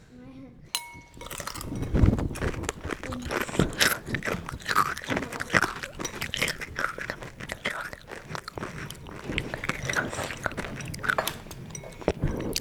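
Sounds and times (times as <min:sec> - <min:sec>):
chewing crunchy Frosties cereal: 0:01.1 - 0:12.5.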